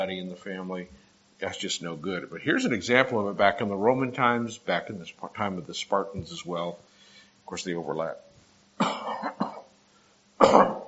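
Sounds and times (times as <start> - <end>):
speech: 0.0 - 6.9, 7.5 - 9.4
person getting over a lingering cough coughing harshly: 8.8 - 9.7, 10.4 - 10.8.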